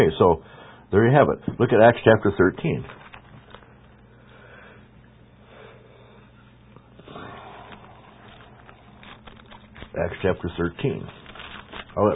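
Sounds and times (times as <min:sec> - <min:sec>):
speech: 0:00.0 - 0:03.0, 0:10.0 - 0:11.2, 0:12.0 - 0:12.1
low steady hum: 0:00.0 - 0:12.1
person sniffing: 0:07.0 - 0:09.2.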